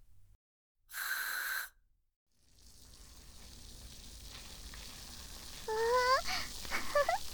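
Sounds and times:
carbonated shampoo fizzing and crackling as it is lathered in the palms: 2.5 - 7.3.

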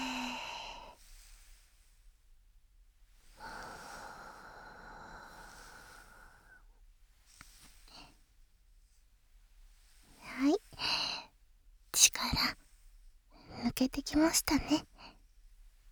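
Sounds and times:
slow soft breathing in and out during relaxation: 0.0 - 2.2, 3.1 - 8.4, 9.6 - 11.4
speech: 12.0 - 12.6, 13.7 - 14.9.

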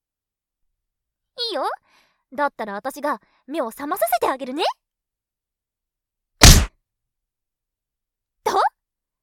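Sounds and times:
speech: 1.5 - 4.8
light punch to the nose during a boxing bout: 6.4 - 6.7.

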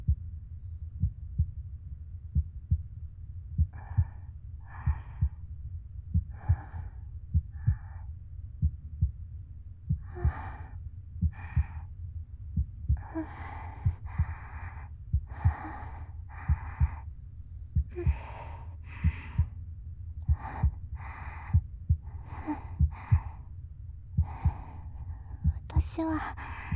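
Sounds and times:
heartbeat thumping: 0.0 - 0.3, 1.0 - 1.7, 2.3 - 3.0, 3.6 - 11.9, 12.5 - 19.6, 20.2 - 23.5, 24.1 - 26.7
speech: 26.0 - 26.6.

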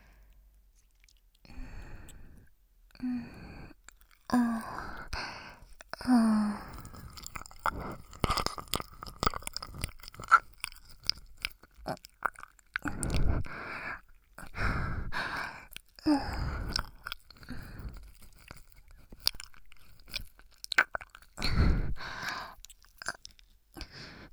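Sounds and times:
breathy sighs: 1.5 - 8.0, 12.8 - 18.0, 21.4 - 22.6, 23.8 - 24.3
ear-licking mouth sounds: 6.6 - 14.6, 15.3 - 23.5.

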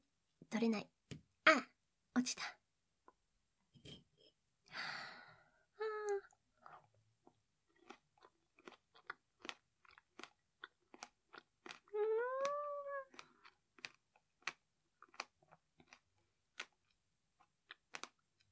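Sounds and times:
speech: 0.5 - 0.9, 1.5 - 2.6
person biting and chewing a strawberry: 7.7 - 18.2.

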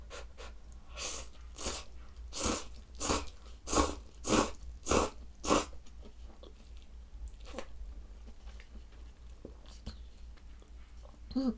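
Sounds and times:
chewing and slurping instant fried noodles: 0.1 - 8.8.

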